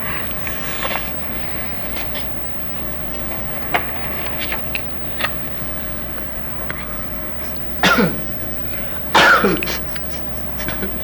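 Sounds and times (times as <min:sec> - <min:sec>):
steady low hum: 0:00.0 - 0:11.0
sharp coughs: 0:07.5 - 0:11.0
faint throat-clearing: 0:07.8 - 0:08.3, 0:09.1 - 0:11.0.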